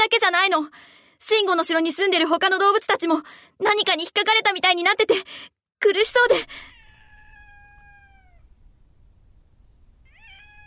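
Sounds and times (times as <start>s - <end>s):
speech: 0.0s - 6.7s
injured kitten meowing: 6.7s - 8.4s, 10.1s - 10.6s.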